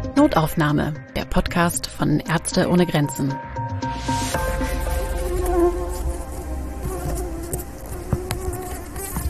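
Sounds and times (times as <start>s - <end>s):
speech: 0.2s - 4.2s
swarm of tiger mosquitoes buzzing: 4.3s - 9.2s.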